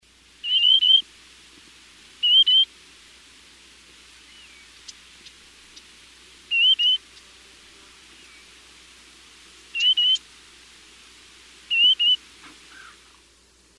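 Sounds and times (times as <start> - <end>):
Gray-tailed Tattler singing: 0.4 - 1.0, 2.2 - 2.7, 4.2 - 7.3, 8.1 - 8.6, 9.7 - 10.2, 11.7 - 13.2.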